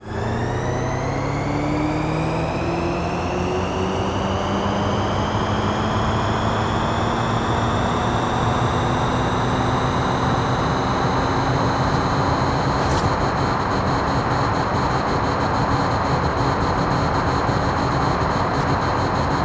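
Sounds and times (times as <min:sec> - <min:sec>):
electric pickup truck: 0:00.0 - 0:19.4.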